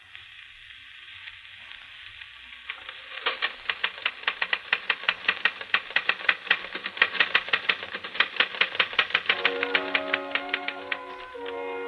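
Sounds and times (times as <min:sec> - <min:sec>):
faint phonograph record hiss: 0:00.0 - 0:11.8
typewriter keystrokes played from phonograph record: 0:02.7 - 0:11.8.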